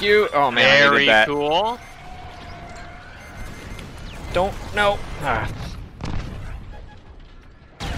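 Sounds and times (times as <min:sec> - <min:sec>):
speech: 0:00.0 - 0:01.9, 0:04.4 - 0:05.7
shooter video game noise: 0:00.0 - 0:07.9
missile launch explosions in a shooter video game: 0:03.6 - 0:07.9.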